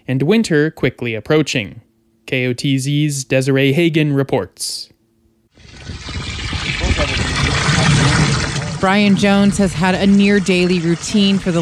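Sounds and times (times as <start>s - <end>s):
speech: 0.1s - 4.9s, 8.8s - 11.6s
water pouring into a 5-gallon bucket: 5.6s - 11.6s.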